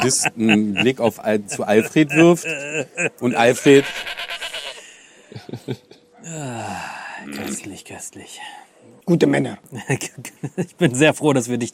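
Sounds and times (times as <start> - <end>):
laughter: 0.0 - 3.9, 5.3 - 6.1
speech: 0.0 - 4.3, 5.4 - 11.7
goats bleating: 1.8 - 4.9.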